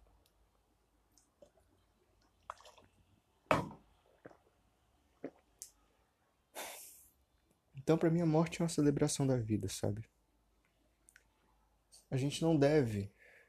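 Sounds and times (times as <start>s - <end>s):
person drinking water with soft gulps and wet swallowing clicks: 1.1s - 3.0s, 3.6s - 5.8s
speech: 7.9s - 10.2s, 12.1s - 13.2s.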